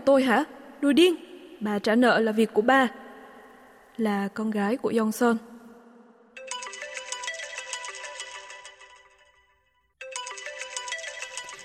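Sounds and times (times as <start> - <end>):
speech: 0.0 - 3.0, 4.0 - 5.5
mobile phone ringtone: 6.4 - 11.6.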